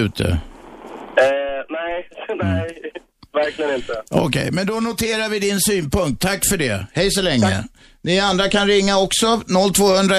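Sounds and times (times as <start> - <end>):
speech: 0.0 - 0.5, 2.3 - 10.1
voice through a narrow tinny phone line: 1.2 - 4.0.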